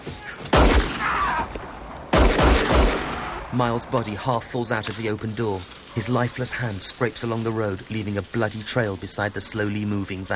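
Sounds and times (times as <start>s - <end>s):
gunshots fired from a gun at a man escaping a van: 0.5s - 4.1s
speech: 3.6s - 10.3s.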